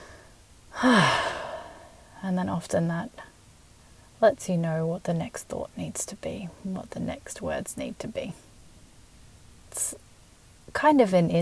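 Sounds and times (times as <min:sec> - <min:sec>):
deep breath taken by a speaker: 0:00.0 - 0:02.0
speech: 0:00.8 - 0:01.2, 0:02.2 - 0:03.3, 0:04.2 - 0:08.5, 0:09.7 - 0:10.1, 0:10.7 - 0:11.4.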